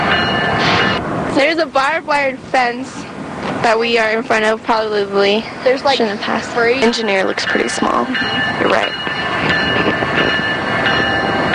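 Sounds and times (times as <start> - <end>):
Amtrak train standing still outdoors in daytime, rumbling drone: 0.0 - 11.5
constant high tonal hum of a standing Amtrak train: 0.0 - 11.5
speech: 1.4 - 9.6.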